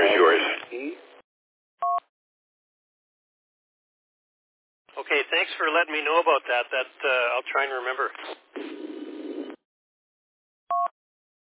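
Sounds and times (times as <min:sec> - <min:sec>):
band-limited radio hiss: 0:00.0 - 0:00.7, 0:05.0 - 0:09.6
speech: 0:05.1 - 0:08.9.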